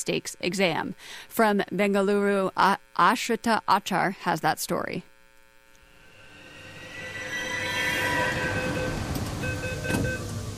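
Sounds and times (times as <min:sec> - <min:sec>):
speech: 0:00.0 - 0:05.1
metro train at a platform rumbling with high electric whine: 0:05.9 - 0:10.5
metro train doors clunking: 0:09.1 - 0:10.5.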